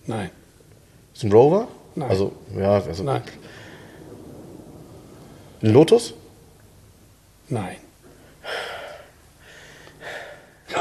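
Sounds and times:
speech: 0:00.1 - 0:00.4, 0:01.2 - 0:03.6, 0:05.6 - 0:06.2, 0:07.5 - 0:07.8
heavy breathy exhalations: 0:03.4 - 0:04.1, 0:08.2 - 0:10.8.

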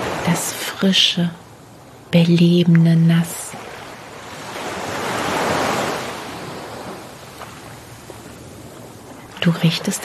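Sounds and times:
steady surf noise: 0:00.0 - 0:10.0
speech: 0:00.2 - 0:01.4, 0:02.1 - 0:03.4, 0:09.5 - 0:10.0
foaming sea wave washing up the beach: 0:03.5 - 0:09.4.

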